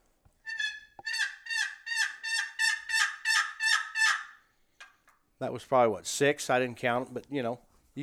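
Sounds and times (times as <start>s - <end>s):
turkey hen plain yelp made on a turkey call: 0.5s - 4.5s
speech: 5.4s - 8.0s.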